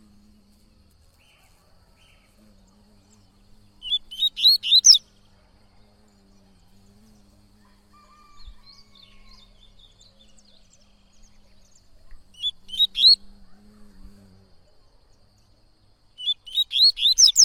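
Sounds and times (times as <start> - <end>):
faint bird chirps: 1.2 - 15.6, 16.2 - 17.4
yellow-bellied seedeater singing a fast run of high slurred notes: 3.1 - 5.1, 8.5 - 13.3, 16.2 - 17.4.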